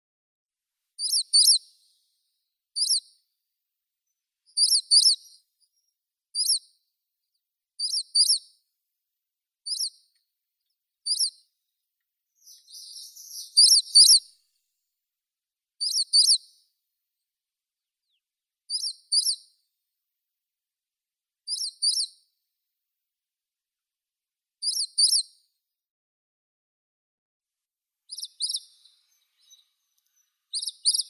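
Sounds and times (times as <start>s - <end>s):
Hume's leaf warbler Phylloscopus humei calling: 1.0s - 1.6s, 2.8s - 3.0s, 4.6s - 6.6s, 7.8s - 8.4s, 9.7s - 10.0s, 11.1s - 11.4s, 12.4s - 14.3s, 15.8s - 16.4s, 18.7s - 19.4s, 21.5s - 22.1s, 28.1s - 31.0s.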